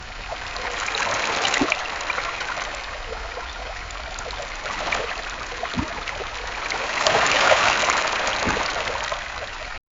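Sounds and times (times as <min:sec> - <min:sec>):
fish swimming in water: 0:00.0 - 0:09.8.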